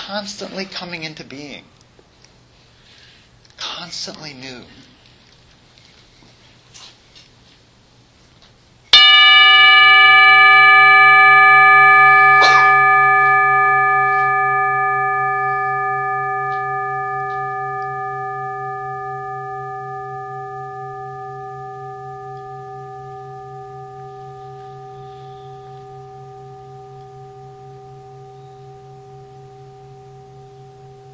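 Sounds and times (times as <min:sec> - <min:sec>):
speech: 0:00.1 - 0:01.8, 0:03.8 - 0:04.9
gong struck and ringing out: 0:09.0 - 0:31.1
low pulsing hum: 0:09.6 - 0:31.1.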